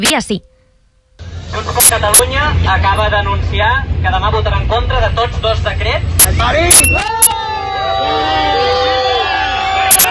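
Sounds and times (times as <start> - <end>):
speech: 0.0 - 0.5, 1.5 - 7.4
large protest crowd booing and shouting: 6.7 - 10.0.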